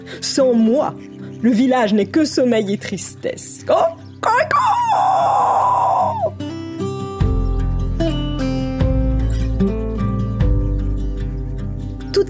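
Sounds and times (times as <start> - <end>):
speech: 0.0 - 4.0
rooster crowing: 4.9 - 6.3
music with deep bass notes and bright plucked tones: 6.8 - 12.2.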